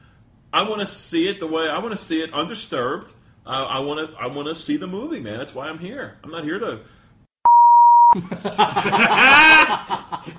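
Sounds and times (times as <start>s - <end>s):
speech: 0.5s - 7.0s, 8.1s - 10.3s
electronic censor bleep over a swear word: 7.5s - 8.2s
people laughing and chuckling: 8.2s - 10.3s.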